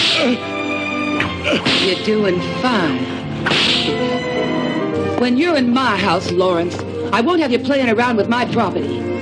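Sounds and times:
speech: 0:00.2 - 0:00.5, 0:01.5 - 0:04.5, 0:05.2 - 0:09.1
sharp whip cracks: 0:03.5 - 0:04.0.

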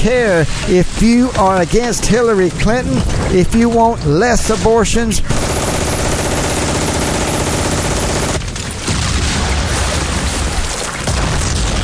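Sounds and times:
speech: 0:00.0 - 0:05.5
dense loud fusillade of overlapping gunshots: 0:05.3 - 0:11.8.

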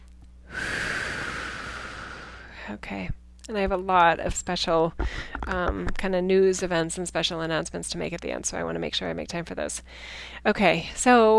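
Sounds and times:
deep breath drawn in: 0:00.5 - 0:02.7, 0:09.9 - 0:10.4
speech: 0:02.7 - 0:11.3.

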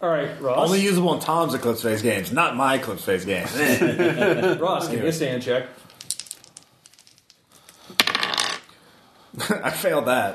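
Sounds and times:
speech: 0:00.0 - 0:05.9, 0:09.4 - 0:10.3
laughter: 0:03.5 - 0:05.0
casino dice clattering on a hard surface during a tabletop role-playing game: 0:05.9 - 0:08.7.

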